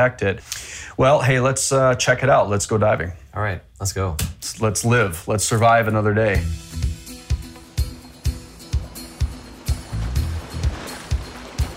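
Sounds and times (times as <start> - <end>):
speech: 0.0 - 6.9
boat hull slapping against ocean waves: 7.2 - 11.7
dive boat engine droning heading offshore from Key Largo: 7.3 - 11.7
rush of wind and spray: 8.5 - 11.7.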